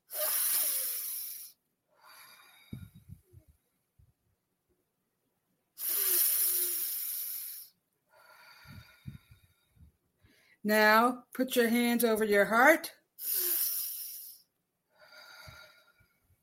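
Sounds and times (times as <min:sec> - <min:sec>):
deep slow belly breathing during a breathing exercise: 0:00.1 - 0:03.7, 0:05.8 - 0:10.6, 0:13.2 - 0:16.4
speech: 0:10.7 - 0:13.4.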